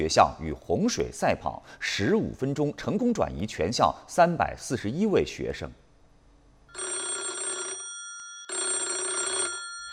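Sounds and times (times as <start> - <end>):
speech: 0.0 - 5.8
telephone ringing with an electronic trill: 6.7 - 9.9.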